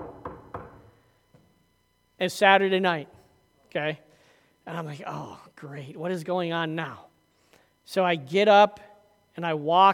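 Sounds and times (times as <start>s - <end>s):
knocking on a door: 0.0s - 0.9s
speech: 2.2s - 4.0s, 4.7s - 7.1s, 7.9s - 9.9s.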